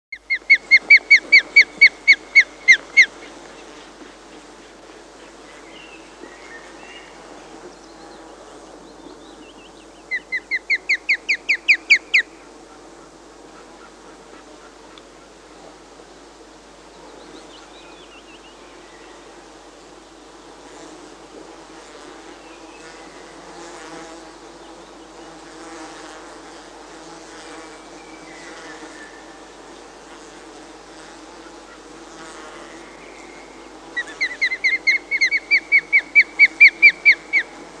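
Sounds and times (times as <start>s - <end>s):
osprey calling: 0.2s - 3.3s, 10.1s - 12.3s, 33.3s - 37.6s.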